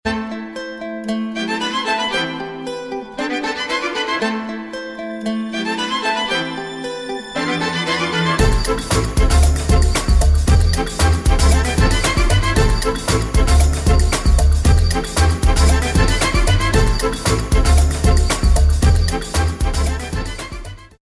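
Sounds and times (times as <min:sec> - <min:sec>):
violin trip hop music with jazz and classical style: 0:00.1 - 0:21.0.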